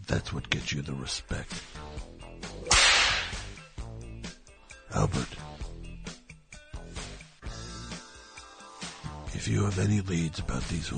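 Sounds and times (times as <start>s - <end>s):
low musical background: 0.0s - 10.9s
speech: 0.1s - 2.1s, 4.9s - 5.6s, 9.4s - 10.9s
whip crack: 2.6s - 3.6s.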